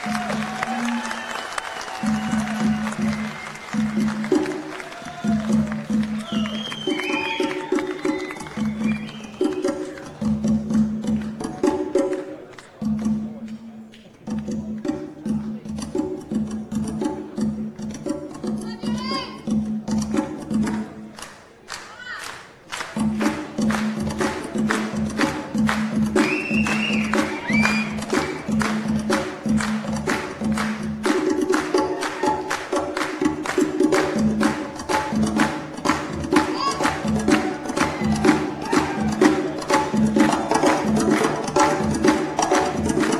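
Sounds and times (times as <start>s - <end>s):
percussion solo: 0.0s - 21.2s, 22.8s - 43.1s.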